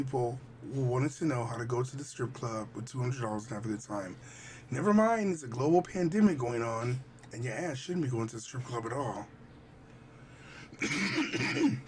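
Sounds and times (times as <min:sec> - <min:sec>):
speech: 0:00.0 - 0:09.4, 0:10.8 - 0:11.8
person clearing throat because of a tickle: 0:10.8 - 0:11.8.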